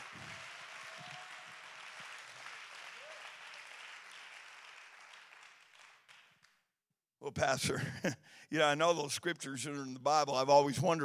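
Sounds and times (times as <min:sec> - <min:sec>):
audience clapping hands in praise to God: 0:00.0 - 0:06.7
speech: 0:07.2 - 0:11.0.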